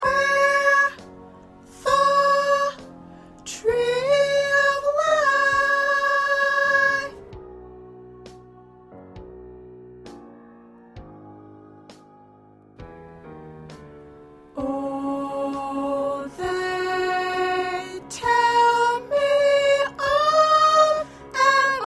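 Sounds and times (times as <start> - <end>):
soprano singing gospel songs: 0.0 - 9.2, 14.6 - 21.8.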